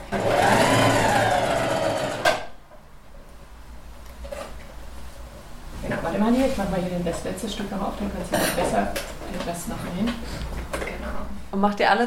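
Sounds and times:
sewing machine run by its foot pedal whirring: 0.0 - 2.5
speech: 6.5 - 10.6, 11.5 - 12.0.

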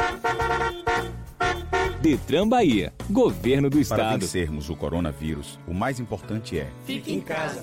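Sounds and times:
car horn honking: 0.0 - 2.3
speech: 2.0 - 7.6.

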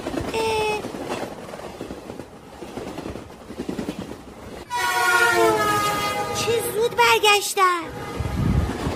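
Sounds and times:
train rumbling past: 0.0 - 8.9
train horn blast: 4.7 - 6.8, 7.9 - 8.9
speech: 7.0 - 8.0.

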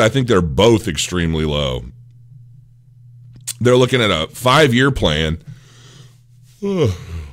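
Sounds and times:
speech: 0.0 - 2.0, 3.6 - 5.5, 6.6 - 7.2
person yawning: 6.6 - 7.3.

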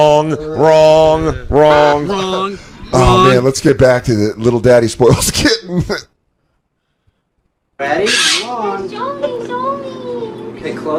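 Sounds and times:
speech: 0.0 - 6.1, 7.8 - 10.0, 10.6 - 10.9
bird calling with harsh squawk and warbling tonal calls: 7.9 - 8.8.

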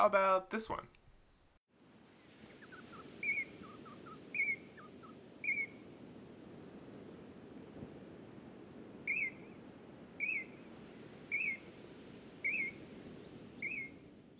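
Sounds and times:
speech: 0.0 - 1.0
outdoor hiss: 0.0 - 14.3
singing honeyeater calling: 2.4 - 6.4, 8.6 - 14.3.

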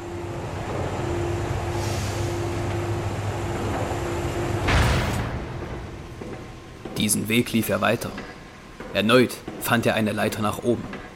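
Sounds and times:
lever-operated movable bridge travelling across a room: 0.0 - 11.1
heavy clunk of movable bridge stopping: 4.6 - 7.0
speech: 7.0 - 11.0.

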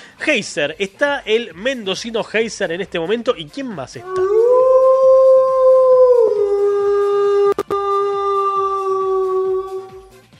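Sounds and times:
speech: 0.2 - 4.5
long drawn-out howl: 4.0 - 10.1.

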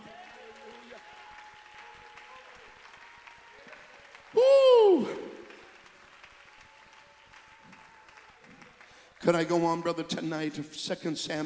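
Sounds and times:
congregation clapping: 0.0 - 11.4
speech: 9.3 - 11.4.

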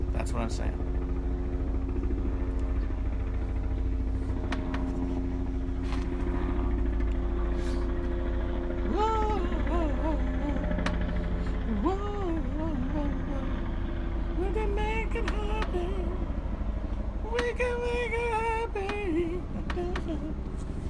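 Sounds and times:
police helicopter droning overhead: 0.0 - 20.8
speech: 0.2 - 0.9.

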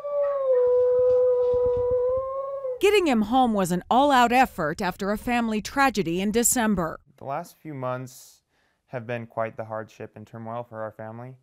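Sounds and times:
dog on a couch howling: 0.0 - 2.8
speech: 2.8 - 11.4.

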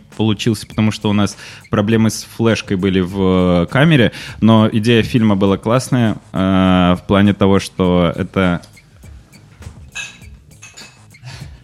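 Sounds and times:
speech: 0.2 - 8.7
glasses clinking in a toast: 9.3 - 11.3.

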